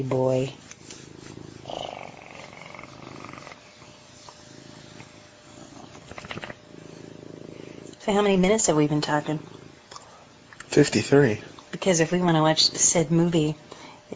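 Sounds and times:
speech: 0.0 - 0.6, 8.0 - 9.5, 10.8 - 13.6
cat purring: 0.4 - 9.9.

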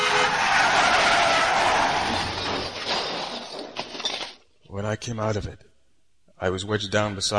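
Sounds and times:
car skidding with tire screech: 0.0 - 3.2
speech: 4.9 - 5.7, 6.4 - 7.3.

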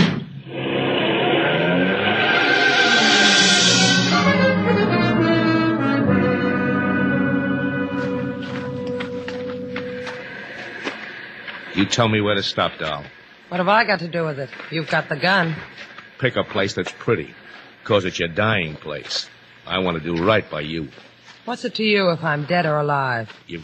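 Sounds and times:
taxi cab engine roaring as it drives off fast: 0.4 - 13.4
speech: 11.9 - 23.6.

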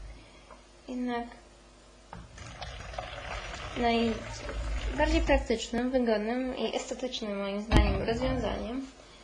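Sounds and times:
speech: 0.9 - 1.4, 3.8 - 9.0
water from a lidded tea cup poured out into a small bowl: 2.3 - 5.5.

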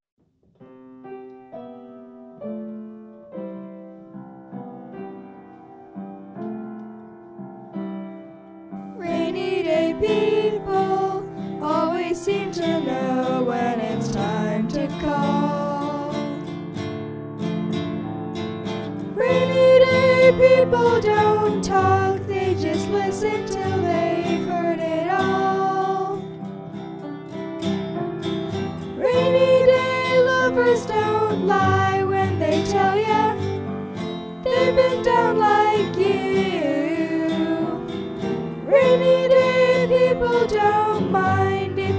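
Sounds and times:
piano: 0.2 - 41.9
guitar: 0.6 - 41.9
person singing: 9.0 - 16.6, 19.1 - 26.4, 29.0 - 33.7, 34.4 - 41.9.

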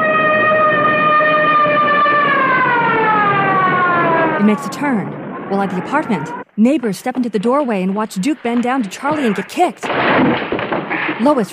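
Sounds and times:
police car siren wailing as the car races toward a scene: 0.0 - 6.5
speech: 4.5 - 10.5, 11.2 - 11.5.

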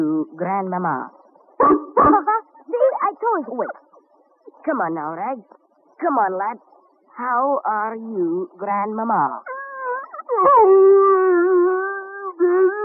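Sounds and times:
speech: 0.0 - 3.9, 4.6 - 9.5, 10.3 - 11.3
dog howling: 9.5 - 12.7.

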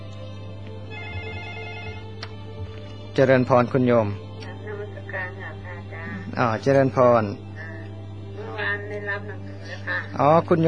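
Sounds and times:
telephone ringing with a steady electronic ringtone: 0.9 - 2.2
speech: 3.2 - 4.2, 6.4 - 7.5, 9.3 - 10.6.

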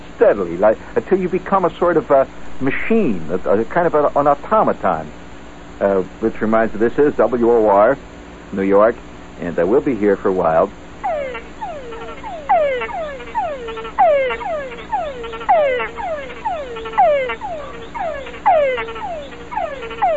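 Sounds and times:
constant hum of other frog calls: 0.0 - 20.1
speech: 0.2 - 5.2, 5.8 - 10.8
chorus of frogs calling in a Panamanian jungle: 6.2 - 8.0, 10.4 - 20.1.

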